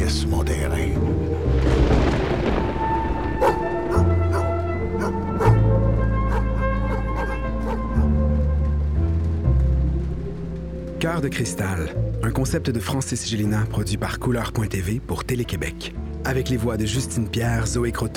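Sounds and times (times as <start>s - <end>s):
droning musical background with deep bass notes: 0.0s - 18.1s
alert dog barking in short sharp yaps: 3.4s - 8.1s
speech: 11.0s - 18.1s.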